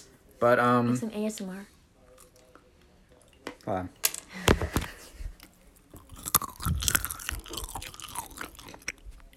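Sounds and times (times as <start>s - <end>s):
speech: 0.4s - 1.7s, 3.7s - 4.5s
crunchy chewing of pistachios: 2.0s - 3.7s, 5.4s - 9.3s.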